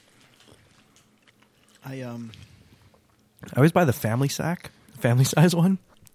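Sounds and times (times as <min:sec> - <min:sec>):
several people chewing Twizzlers licorice candy: 0:00.0 - 0:03.7, 0:05.8 - 0:06.1
speech: 0:01.8 - 0:02.5, 0:03.4 - 0:05.9.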